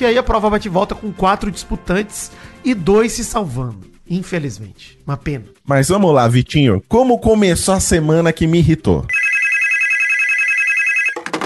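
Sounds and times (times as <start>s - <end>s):
speech: 0.0s - 9.4s
telephone ringing with an electronic trill: 9.1s - 11.4s
clattering noise: 11.2s - 11.4s.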